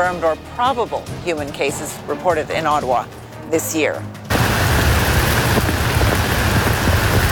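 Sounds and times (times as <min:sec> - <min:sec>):
speech: 0:00.0 - 0:04.2
heavy rain pouring down in Ottawa Canada: 0:04.3 - 0:07.3.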